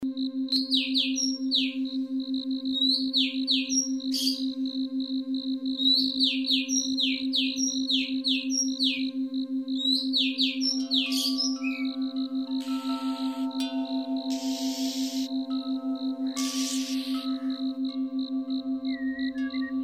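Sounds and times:
steady pulsing electronic hum: 0.0 - 19.8
Oriental magpie-robin singing varied whistles: 0.6 - 1.9, 2.8 - 4.5, 5.8 - 9.1, 9.8 - 15.3, 16.2 - 17.6, 18.8 - 19.8
ticking high tone: 10.2 - 19.8.

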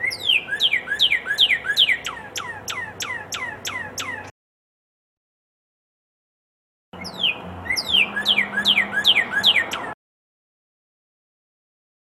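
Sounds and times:
red-crested cardinal song of descending whistled sweeps: 0.0 - 4.3, 7.0 - 10.0.

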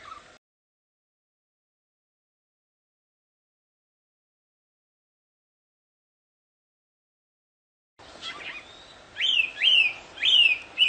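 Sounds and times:
wild Chinese hwamei singing slurred whistles: 8.2 - 10.8.

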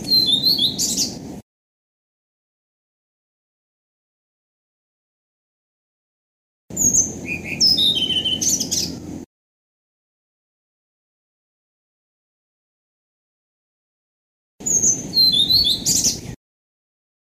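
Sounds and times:
blue-throated flycatcher song: 0.0 - 1.2, 6.7 - 9.0, 14.6 - 16.4.

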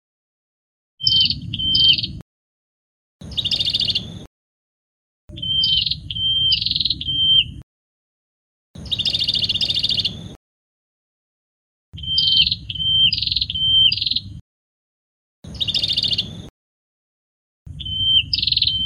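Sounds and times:
prinia song with level whistles and harsh buzzy trills: 1.0 - 2.2, 3.2 - 4.3, 5.3 - 7.6, 8.8 - 10.4, 12.0 - 14.4, 15.4 - 16.5, 17.7 - 18.8.

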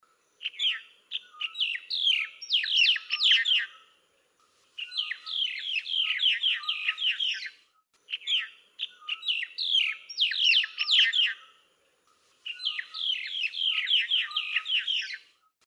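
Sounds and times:
Nias hill myna calling: 0.4 - 3.9, 4.7 - 11.6, 12.4 - 15.2.

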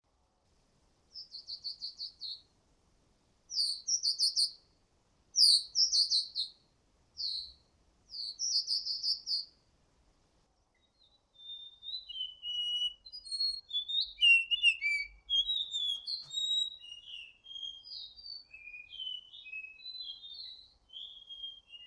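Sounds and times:
ciung batu whistling for luring: 1.1 - 2.4, 3.5 - 4.6, 5.4 - 6.6, 7.2 - 9.5, 10.8 - 21.8.

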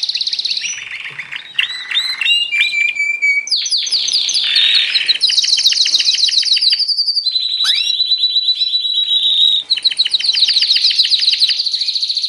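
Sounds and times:
canary trio song with trills and whistles: 0.0 - 12.2.

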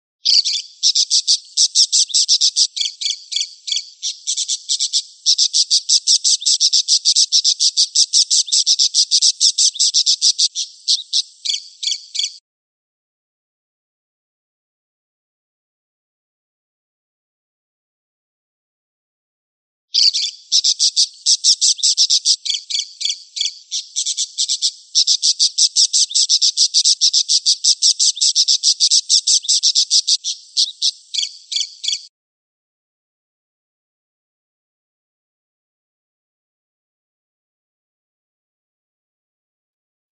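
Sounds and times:
parakeet calling: 0.2 - 12.4, 20.0 - 32.1.

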